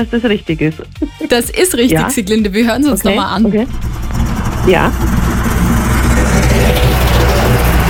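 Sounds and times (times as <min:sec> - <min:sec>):
speech: 0:00.0 - 0:04.0, 0:04.6 - 0:05.3
snowplow pushing snow aside on a winter road: 0:03.0 - 0:07.8.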